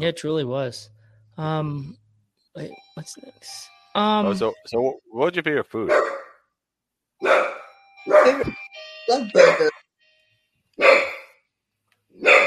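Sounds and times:
speech: 0.0 - 2.0, 2.6 - 6.2, 8.1 - 9.8
dog barking: 5.9 - 6.3, 7.2 - 8.4, 9.4 - 9.7, 10.8 - 11.3, 12.2 - 12.4.

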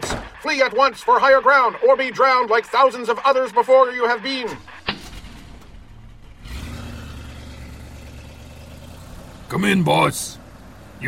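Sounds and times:
speech: 0.4 - 4.8, 9.6 - 10.4
car engine starting and revving: 4.5 - 11.0.

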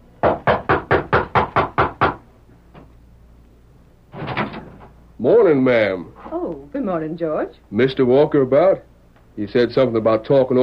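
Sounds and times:
knocking on a wooden back door: 0.2 - 2.2
speech: 5.2 - 10.6.

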